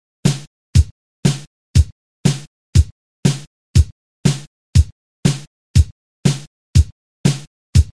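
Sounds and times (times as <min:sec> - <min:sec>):
inverted two-beat rhythm: 0:00.3 - 0:07.9.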